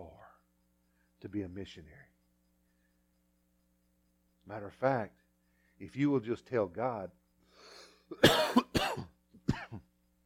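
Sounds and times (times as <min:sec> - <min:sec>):
speech: 0:01.2 - 0:02.2, 0:04.5 - 0:05.2, 0:05.8 - 0:07.2, 0:08.1 - 0:08.7
person coughing harshly: 0:08.1 - 0:09.9.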